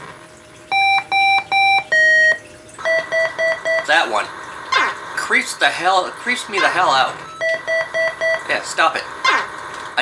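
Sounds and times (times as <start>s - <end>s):
video game electronic alarm beeping: 0.7s - 4.0s, 7.2s - 8.6s
speech: 3.9s - 4.4s, 5.3s - 7.3s, 8.5s - 9.2s.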